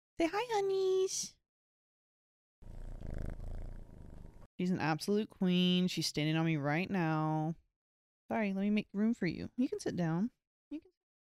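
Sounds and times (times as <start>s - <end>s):
speech: 0.2s - 1.4s, 4.6s - 7.6s, 8.3s - 11.2s
female cat purring: 2.6s - 4.5s.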